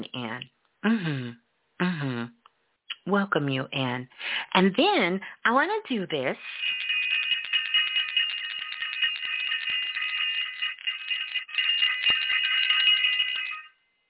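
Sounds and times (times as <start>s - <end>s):
speech: 0.0s - 2.4s, 3.1s - 6.8s
bright high bell ringing rapidly: 6.4s - 13.8s.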